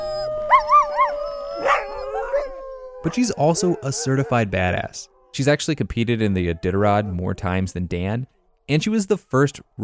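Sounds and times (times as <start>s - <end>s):
dog yelping: 0.0s - 4.4s
dogs howling: 0.0s - 5.5s, 6.3s - 7.3s
speech: 3.0s - 9.8s.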